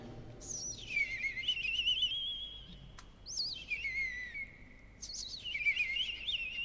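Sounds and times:
European robin singing warbling phrases with fluttering trills: 0:00.4 - 0:06.6.

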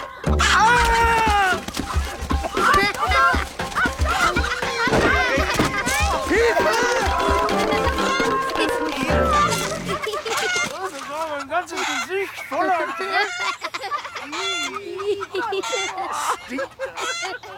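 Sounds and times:
chicken clucking: 0:00.0 - 0:17.5
laughter: 0:00.0 - 0:17.5
busy cluttered noise: 0:00.6 - 0:11.5.

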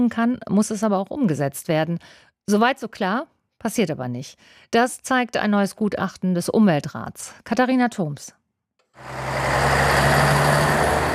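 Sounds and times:
speech: 0:00.0 - 0:08.4, 0:09.0 - 0:10.3
engines idling at a busy road intersection: 0:09.0 - 0:11.1
road traffic roar at a busy intersection: 0:09.0 - 0:11.1.

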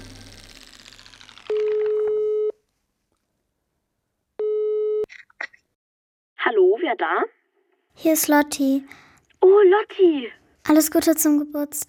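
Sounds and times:
electronic telephone line tone beeps: 0:01.5 - 0:02.6, 0:04.4 - 0:05.0
speech: 0:06.9 - 0:07.4, 0:08.0 - 0:11.8.

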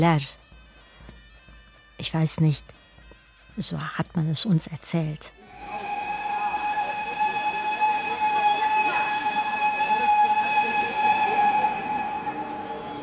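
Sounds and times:
speech: 0:00.0 - 0:00.4, 0:02.0 - 0:02.8, 0:03.6 - 0:05.9
sustained train whistle at a railway platform: 0:05.4 - 0:13.0
railway station noise: 0:05.5 - 0:13.0.

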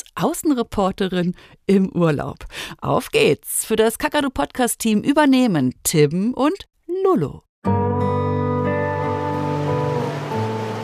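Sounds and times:
speech: 0:00.2 - 0:07.8
ocean surf washing at the shore: 0:09.0 - 0:10.8.

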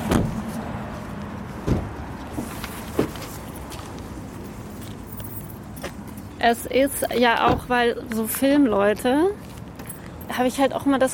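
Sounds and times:
parked car door handle and door clunks and clicks: 0:00.1 - 0:00.4, 0:01.6 - 0:01.9
speech: 0:06.5 - 0:09.5, 0:10.4 - 0:11.1.

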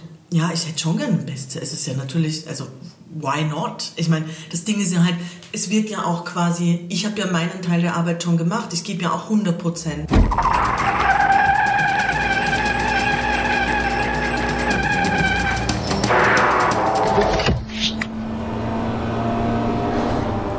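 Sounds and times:
speech: 0:00.3 - 0:11.2
race car tires screeching skid during auto racing: 0:10.1 - 0:20.5
race car engine drone during auto racing: 0:10.2 - 0:20.5.

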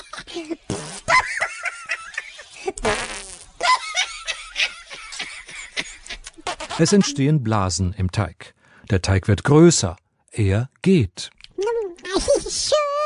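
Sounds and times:
comedic fart sound effect: 0:00.7 - 0:01.4, 0:02.8 - 0:03.6, 0:06.3 - 0:07.2
lively playful vocal sounds and chatter: 0:06.1 - 0:07.4, 0:11.3 - 0:13.0
speech: 0:06.8 - 0:11.4.

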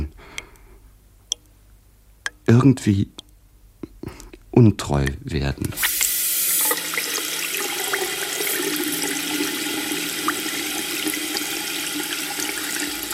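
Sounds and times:
speech: 0:02.5 - 0:03.2, 0:04.0 - 0:06.0
water running from a tap: 0:05.7 - 0:13.1.

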